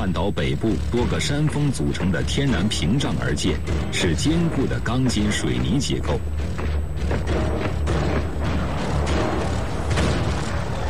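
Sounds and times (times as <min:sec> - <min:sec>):
speech: 0:00.0 - 0:06.8
low loud rumble of battle noise: 0:00.0 - 0:10.8
Japanese heavy artillery cannon fire in an assault on the Gin Drinkers Line in Hong Kong: 0:07.3 - 0:10.8.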